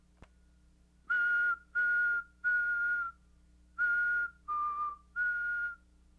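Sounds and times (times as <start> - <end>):
dry whistle: 1.1 - 5.9.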